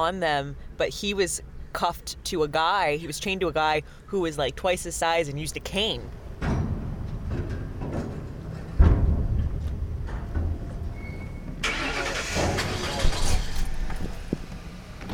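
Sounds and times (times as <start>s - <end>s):
speech: 0.0s - 6.2s
car engine rumble driving around McNeil Island: 0.0s - 15.1s
heavy thump: 6.4s - 11.6s.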